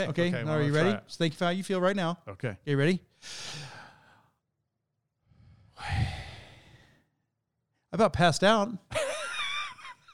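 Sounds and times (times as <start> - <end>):
speech: 0.0 - 3.8, 7.9 - 9.1
person taking a deep breath in: 3.2 - 4.4, 5.2 - 7.1
person exhaling with a long sigh: 5.4 - 6.9.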